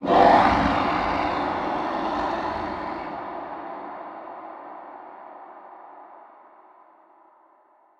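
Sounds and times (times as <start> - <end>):
unknown creatures and big snake ambience: 0.0 - 5.1.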